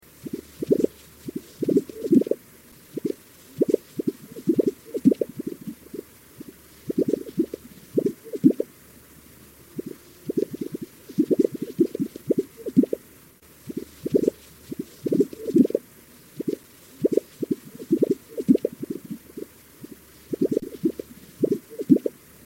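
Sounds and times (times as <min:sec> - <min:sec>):
Gunnison sage grouse calling: 0:00.2 - 0:08.7, 0:09.8 - 0:13.0, 0:13.7 - 0:15.8, 0:16.4 - 0:22.1.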